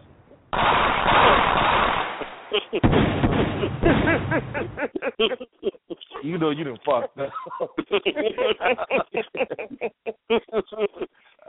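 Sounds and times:
sharp gunshot cracks: 0.6 - 4.3
rapid gunfire: 0.6 - 4.5
laughter: 2.5 - 2.9, 3.5 - 11.4
speech: 6.4 - 10.4.

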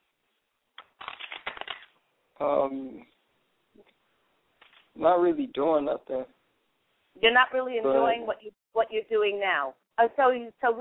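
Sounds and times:
deck of cards being riffle-shuffled: 0.8 - 2.0
speech: 2.4 - 3.2, 5.0 - 6.4, 7.2 - 10.7.

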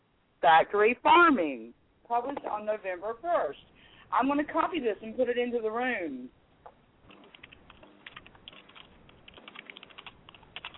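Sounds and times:
speech: 0.4 - 6.4
typing on a computer keyboard: 7.1 - 10.7.

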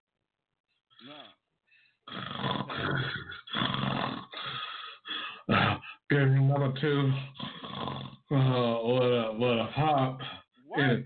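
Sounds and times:
heavy loud rasping breathing: 1.0 - 6.1, 7.2 - 8.6
speech: 6.1 - 7.5, 8.3 - 11.0.

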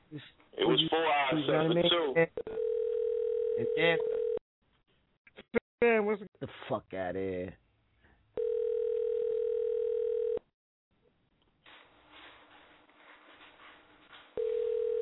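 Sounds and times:
speech: 0.1 - 2.7, 3.6 - 4.3, 5.8 - 7.6
telephone ringback tone before voicemail: 2.5 - 4.4, 8.4 - 10.4, 14.4 - 15.0.

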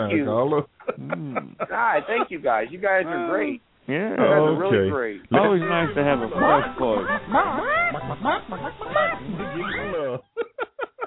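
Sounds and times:
speech: 0.0 - 10.3
laughter: 0.8 - 2.7, 5.3 - 11.0
chickens squawking and clucking: 5.4 - 10.2.

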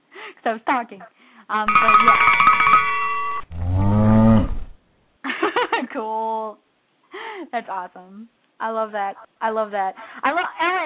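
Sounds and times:
speech: 0.4 - 2.9, 5.9 - 6.6, 7.4 - 10.8
cow mooing: 3.5 - 4.8.

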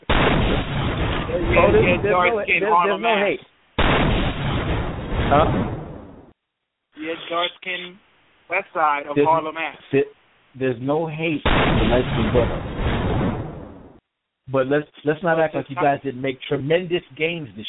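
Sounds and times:
gunshot sound effect with rumbling echo: 0.1 - 1.9, 3.8 - 6.1, 11.5 - 13.8
speech: 1.5 - 3.5, 5.3 - 5.7, 7.0 - 12.8, 14.5 - 17.6.

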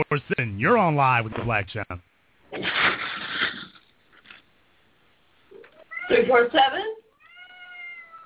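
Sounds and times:
speech: 0.0 - 2.7, 6.1 - 7.0
cat yowling loudly near a phone line: 5.8 - 6.3, 7.1 - 8.2.

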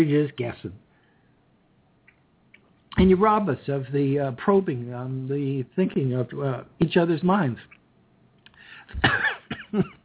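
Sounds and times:
speech: 0.0 - 0.8, 3.0 - 7.8, 8.9 - 10.0
person coughing and clearing throat: 8.9 - 10.0.

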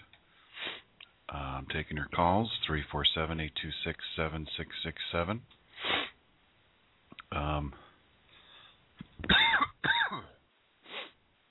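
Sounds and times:
speech: 1.6 - 5.9, 7.3 - 7.9
person clearing throat: 9.3 - 10.4.

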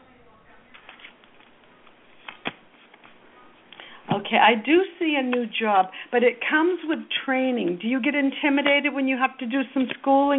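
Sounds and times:
playing cards being shuffled: 0.7 - 3.9
speech: 4.2 - 10.3.

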